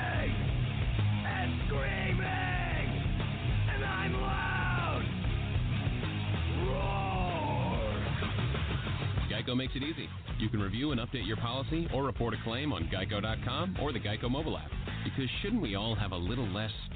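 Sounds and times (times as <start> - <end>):
early-1990s-style heavy metal music: 0.0 - 16.9
person yelling and screaming: 1.3 - 2.9, 3.7 - 5.1, 6.5 - 8.2
speech: 9.5 - 16.9.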